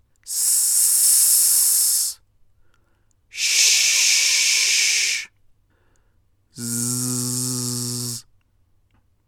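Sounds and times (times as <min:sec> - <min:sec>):
voice producing long sibilant hisses: 0:00.3 - 0:02.2, 0:03.3 - 0:05.3, 0:06.6 - 0:08.2.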